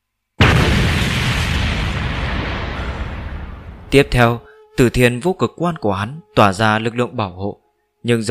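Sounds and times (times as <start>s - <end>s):
loud explosion overhead: 0.4s - 4.3s
speech: 3.9s - 8.2s.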